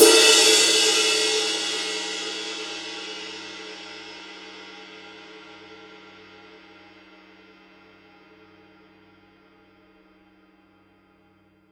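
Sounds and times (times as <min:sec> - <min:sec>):
20-inch Paiste 2002 power ride cymbal edge: 0:00.0 - 0:06.1.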